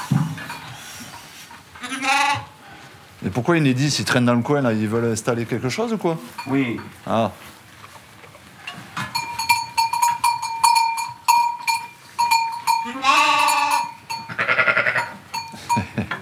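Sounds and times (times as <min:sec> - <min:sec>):
ewes and lambs bleating: 0:01.8 - 0:02.6, 0:12.7 - 0:15.2
speech: 0:03.2 - 0:07.6
tinkling bell-like ring: 0:09.2 - 0:14.4, 0:15.0 - 0:16.2.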